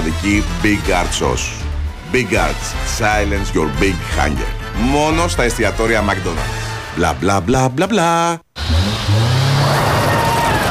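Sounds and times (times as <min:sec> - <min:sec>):
speech: 0:00.2 - 0:09.2
European-built performance car engine revving: 0:08.6 - 0:10.7.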